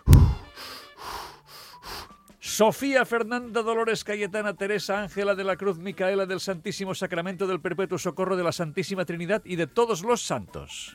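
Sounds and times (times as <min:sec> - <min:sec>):
low thump: 0:00.0 - 0:00.5
deep breaths taken as a breathing exercise: 0:00.0 - 0:02.2
speech: 0:02.6 - 0:10.9.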